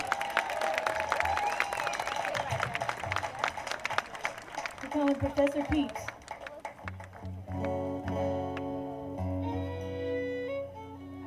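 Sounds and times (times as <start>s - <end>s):
audience applauding: 0.0s - 8.7s
faint murmur of crowd noise: 1.3s - 11.2s
speech: 4.9s - 6.2s.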